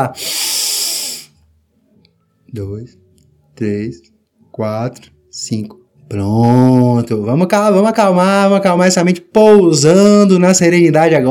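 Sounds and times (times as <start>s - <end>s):
speech: 0.0s - 0.4s, 2.5s - 3.0s, 3.6s - 11.2s
deep breath out during meditation: 0.0s - 1.4s.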